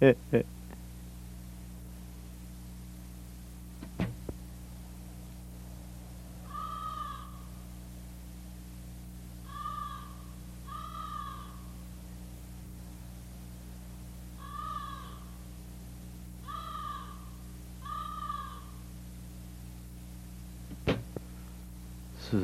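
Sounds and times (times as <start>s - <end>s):
speech: 0.0s - 0.6s
steady low hum: 0.0s - 22.4s
sharp knock: 3.8s - 4.4s, 20.7s - 21.2s
crow cawing at night: 6.4s - 7.6s, 9.4s - 11.8s, 14.4s - 15.4s, 16.4s - 18.9s.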